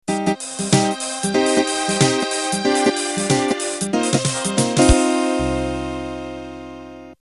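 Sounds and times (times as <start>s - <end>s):
hip-hop MIDI beat ending: 0.0s - 6.3s.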